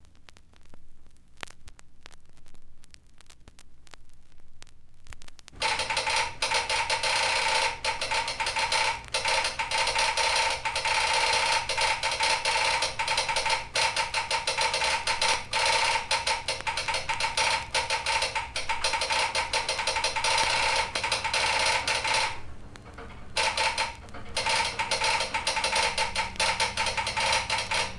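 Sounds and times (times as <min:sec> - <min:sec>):
railroad telegraph clicking: 0:05.5 - 0:27.9.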